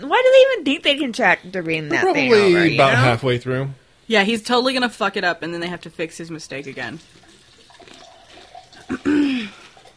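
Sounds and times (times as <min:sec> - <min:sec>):
speech: 0:00.0 - 0:07.2, 0:08.9 - 0:09.6
drink poured into a glass: 0:06.9 - 0:09.9.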